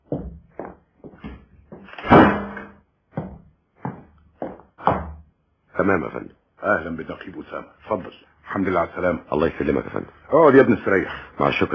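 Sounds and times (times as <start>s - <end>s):
heavy door slamming shut in an office: 1.9s - 2.8s
speech: 5.8s - 11.7s.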